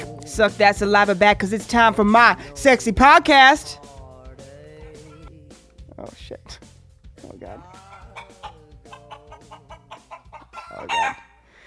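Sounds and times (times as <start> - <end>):
speech: 0.3 - 3.8, 6.0 - 6.7, 7.3 - 7.8
chicken clucking: 7.6 - 11.4
rooster crowing: 7.7 - 11.4.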